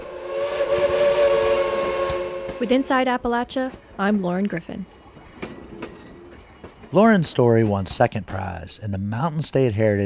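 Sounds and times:
steam locomotive whistle: 0:00.0 - 0:03.0
speech: 0:02.6 - 0:05.0, 0:06.9 - 0:10.0.

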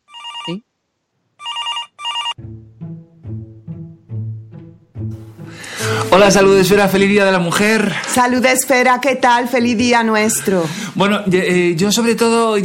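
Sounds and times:
electronic telephone ringing with an incoming call: 0:00.0 - 0:00.6, 0:01.4 - 0:02.4
speech: 0:00.5 - 0:00.7, 0:06.0 - 0:12.6.

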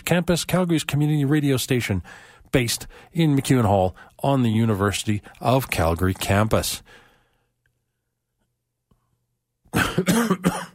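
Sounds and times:
speech: 0:00.1 - 0:07.0, 0:10.0 - 0:10.6
person clearing throat: 0:09.7 - 0:10.7
person coughing harshly: 0:09.7 - 0:10.7.

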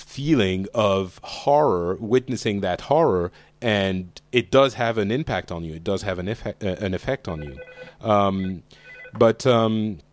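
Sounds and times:
speech: 0:00.2 - 0:10.1
brief electronic chirp of a phone: 0:07.4 - 0:09.2
phone ringing: 0:07.4 - 0:09.3.

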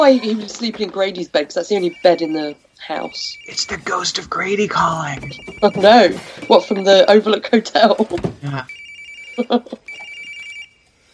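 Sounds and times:
speech: 0:00.0 - 0:08.8, 0:09.4 - 0:09.9
telephone ringing in electronic bursts: 0:01.7 - 0:07.5, 0:08.7 - 0:10.9.

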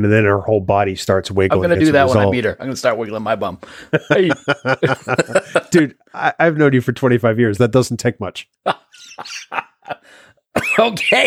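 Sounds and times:
speech: 0:00.0 - 0:11.2
laughter: 0:03.9 - 0:06.0, 0:08.7 - 0:10.1
person in a harsh coughing fit: 0:04.9 - 0:05.7, 0:10.6 - 0:11.2.

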